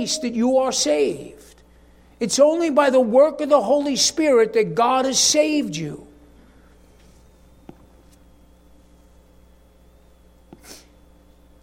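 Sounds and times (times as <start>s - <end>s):
speech: 0.0s - 1.6s, 2.2s - 6.1s
hum: 0.0s - 11.6s
person sneezing: 10.6s - 11.0s.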